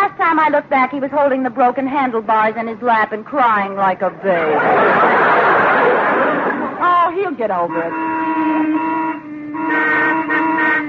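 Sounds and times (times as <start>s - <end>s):
speech: 0.4s - 5.2s, 7.1s - 8.6s
laughter: 4.3s - 7.0s
car horns honking in heavy traffic: 6.8s - 10.8s.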